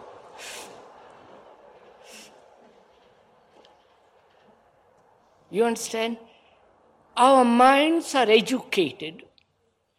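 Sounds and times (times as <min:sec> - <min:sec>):
train rumbling past outside: 0:00.0 - 0:05.6
speech: 0:05.5 - 0:06.3, 0:07.2 - 0:09.3.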